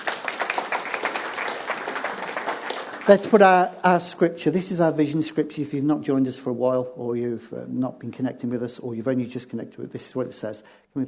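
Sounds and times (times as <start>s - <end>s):
audience applause at a church gathering: 0.0s - 3.7s
speech: 3.1s - 11.0s.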